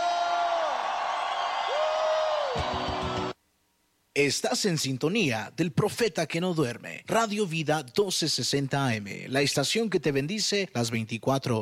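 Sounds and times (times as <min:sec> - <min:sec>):
large crowd shouting and cheering for joy: 0:00.0 - 0:03.4
rising whoops: 0:00.0 - 0:03.4
speech: 0:04.2 - 0:11.6.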